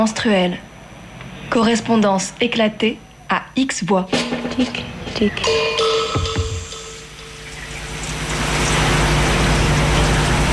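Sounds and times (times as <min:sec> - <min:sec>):
speech: 0:00.0 - 0:00.7, 0:01.5 - 0:05.9
low hum: 0:04.6 - 0:10.5
steady rain falling: 0:05.8 - 0:10.5.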